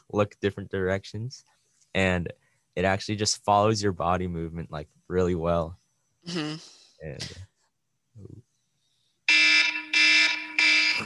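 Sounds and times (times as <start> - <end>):
speech: 0.1 - 7.5
loud piercing electronic timer alarm: 9.3 - 11.0.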